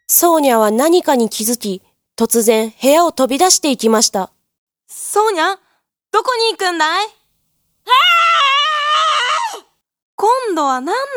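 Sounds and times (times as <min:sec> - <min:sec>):
speech: 0:00.1 - 0:07.2, 0:07.9 - 0:08.6, 0:10.2 - 0:11.1
woman screaming: 0:07.9 - 0:09.7.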